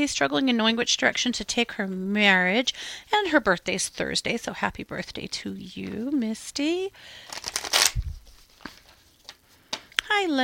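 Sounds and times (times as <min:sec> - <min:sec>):
speech: 0:00.0 - 0:08.0, 0:10.1 - 0:10.4
playing cards shuffled for a card reading: 0:07.3 - 0:09.4.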